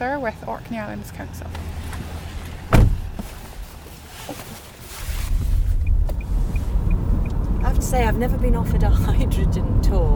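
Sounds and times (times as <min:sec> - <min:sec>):
speech: 0:00.0 - 0:02.0, 0:07.9 - 0:10.1
sharp thump: 0:02.7 - 0:03.3
strong outdoor wind buffeting the microphone: 0:05.2 - 0:10.1.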